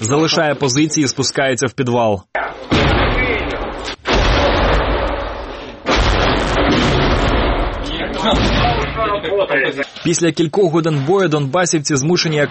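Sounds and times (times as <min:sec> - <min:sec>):
speech: 0:00.0 - 0:02.4, 0:09.2 - 0:12.5
artillery shelling explosions: 0:02.6 - 0:09.4.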